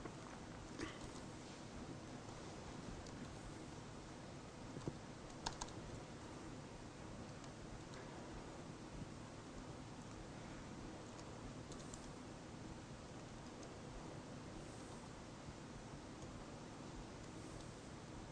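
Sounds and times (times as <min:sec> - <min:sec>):
steady hiss: 0:00.0 - 0:18.3
faint keystrokes on a computer keyboard: 0:04.8 - 0:05.8, 0:11.1 - 0:12.2.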